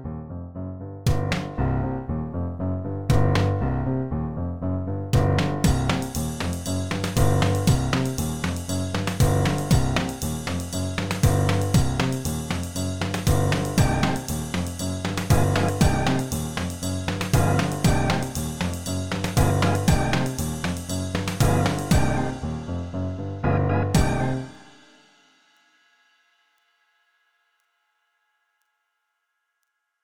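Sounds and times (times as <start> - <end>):
distortion: 1.1 - 24.8.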